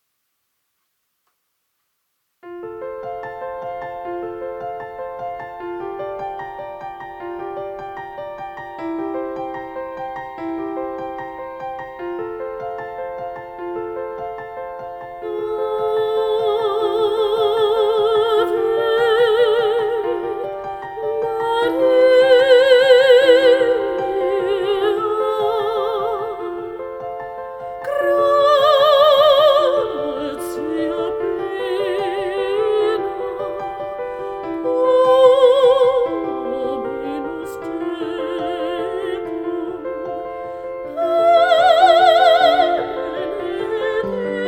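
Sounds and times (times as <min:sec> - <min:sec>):
piano: 0:02.4 - 0:44.4
mezzo-soprano woman singing: 0:14.5 - 0:44.4.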